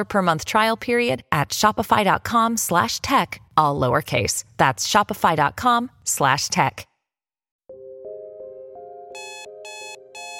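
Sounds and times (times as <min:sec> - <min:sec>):
speech: 0:00.0 - 0:06.9
electronic alarm clock beeping: 0:09.2 - 0:10.3.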